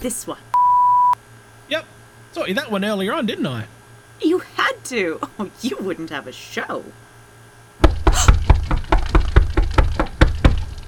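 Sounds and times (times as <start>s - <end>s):
speech: 0.0s - 0.6s, 1.7s - 7.0s
person knocking on a door: 7.8s - 10.8s.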